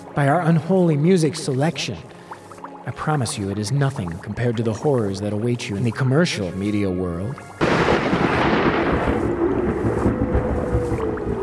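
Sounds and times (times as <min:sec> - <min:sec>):
speech: 0:00.2 - 0:02.1, 0:02.9 - 0:07.6
deep rolling thunder: 0:07.6 - 0:11.4
dense wash of low noise: 0:07.7 - 0:11.4.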